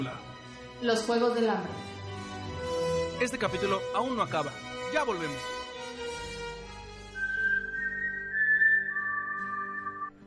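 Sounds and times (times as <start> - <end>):
speech: 0.0 - 1.9, 3.2 - 5.6
music: 0.0 - 10.2
whistled four-note melody: 7.0 - 10.2.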